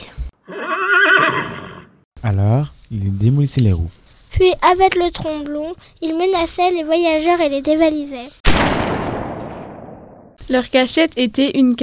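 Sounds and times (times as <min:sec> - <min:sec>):
horse neighing: 0:00.4 - 0:02.0
speech: 0:02.2 - 0:08.7, 0:10.5 - 0:11.8.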